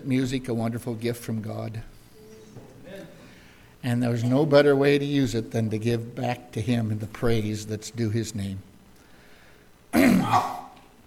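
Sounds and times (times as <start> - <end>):
speech: 0.0 - 2.0, 3.8 - 8.7, 9.9 - 10.6
rough gravelly throat clearing: 9.9 - 10.8.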